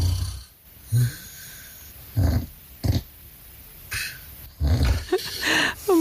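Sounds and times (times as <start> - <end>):
quiet breathing of a sleeping man: 0.0 - 2.2, 5.0 - 6.0
man snoring in his sleep: 0.0 - 3.1, 4.6 - 5.5.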